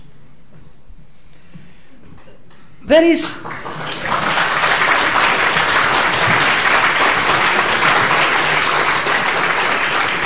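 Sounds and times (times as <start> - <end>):
speech: 2.9 - 3.6
sustained applause from a large crowd: 3.4 - 10.2.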